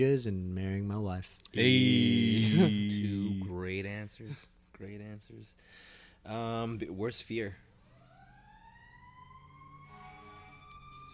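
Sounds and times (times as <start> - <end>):
speech: 0.0 - 7.6
fire truck siren wailing: 1.6 - 3.4, 7.8 - 11.1.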